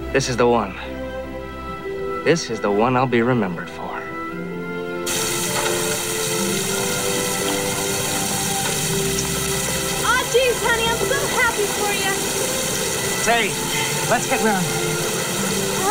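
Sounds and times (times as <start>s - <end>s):
speech: 0.1s - 0.9s, 2.2s - 3.9s, 13.2s - 15.0s
heavy rain pouring down: 5.0s - 15.8s.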